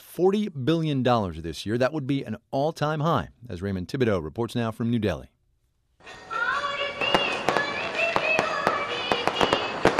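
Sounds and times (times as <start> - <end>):
speech: 0.2 - 5.4
Diwali fireworks cracking and banging: 6.0 - 9.9
festive music or singing: 6.0 - 9.9.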